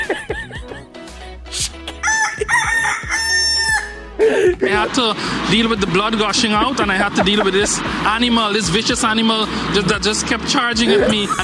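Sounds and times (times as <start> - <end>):
laughter: 0.0 - 1.0, 2.3 - 2.9, 4.2 - 8.4, 10.6 - 11.4
rooster crowing: 2.0 - 4.1
speech: 4.6 - 11.4.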